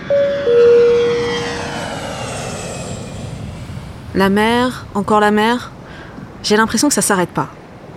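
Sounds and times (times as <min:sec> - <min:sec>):
airplane engines roaring during takeoff: 0:00.0 - 0:07.9
speech: 0:04.2 - 0:05.8, 0:06.4 - 0:07.6.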